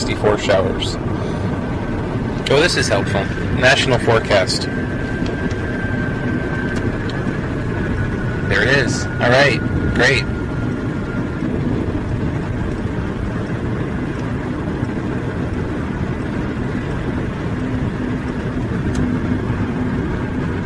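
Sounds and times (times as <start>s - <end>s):
road rumble from inside a car on an interstate highway: 0.0s - 20.6s
speech: 0.1s - 1.2s, 2.5s - 4.9s, 8.5s - 10.4s.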